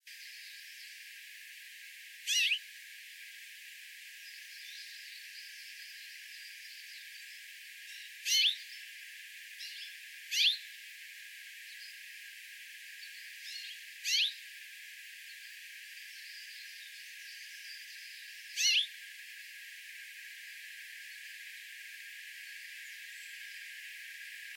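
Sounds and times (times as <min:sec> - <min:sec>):
Common Rosefinch: 0:02.3 - 0:02.6, 0:07.9 - 0:08.7, 0:09.6 - 0:10.7, 0:13.4 - 0:14.4, 0:17.4 - 0:18.9.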